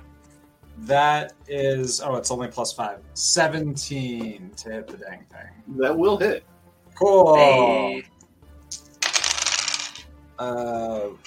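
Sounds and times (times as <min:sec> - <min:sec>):
speech: 0:00.8 - 0:08.1, 0:10.4 - 0:11.2
dice rattling across a hard table surface: 0:08.8 - 0:10.1.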